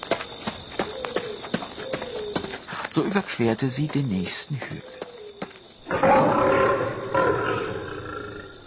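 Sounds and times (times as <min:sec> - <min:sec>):
speech: 0:02.9 - 0:04.9
tiger roaring: 0:05.9 - 0:08.6.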